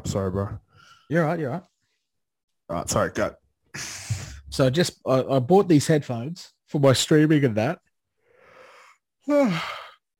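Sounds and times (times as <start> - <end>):
speech: 0.0 - 1.7, 2.7 - 7.9, 9.3 - 9.8
person yawning: 9.3 - 10.0.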